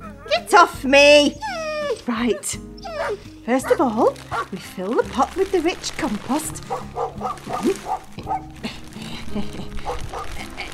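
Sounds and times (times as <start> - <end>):
speech: 0.5 - 1.5, 2.1 - 10.7
several puppies yapping excitedly: 1.3 - 8.6.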